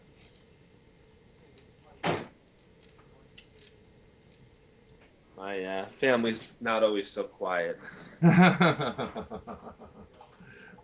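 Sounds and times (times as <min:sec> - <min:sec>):
door shutting with a firm thud: 0:02.0 - 0:02.3
speech: 0:05.4 - 0:10.0
laughter: 0:07.9 - 0:10.3.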